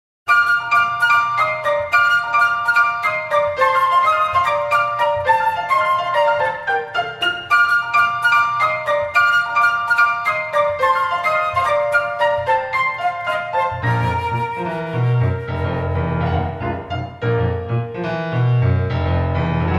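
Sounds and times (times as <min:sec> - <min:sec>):
flute: 0:00.3 - 0:17.4
piano: 0:00.3 - 0:19.7.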